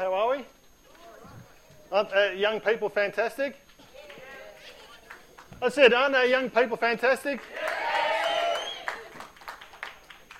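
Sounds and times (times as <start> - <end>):
speech: 1.9 - 3.6, 5.6 - 7.6
scattered clapping: 4.8 - 5.8, 7.2 - 10.3
audience cheering and whooping: 7.4 - 10.0.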